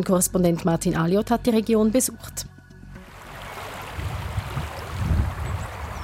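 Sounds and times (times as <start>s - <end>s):
speech: 0.0s - 2.6s
light wind: 3.0s - 6.0s
small river babbling outdoors: 3.0s - 6.0s.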